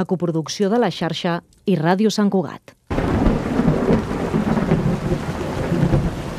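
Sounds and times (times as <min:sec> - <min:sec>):
speech: 0:00.0 - 0:02.8
steady heavy rain pouring down: 0:02.9 - 0:06.3.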